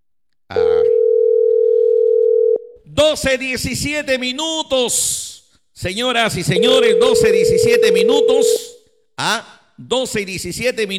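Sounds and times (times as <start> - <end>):
WhatsApp call ringing tone: 0.6 - 2.7, 6.5 - 8.8
speech: 3.0 - 10.9.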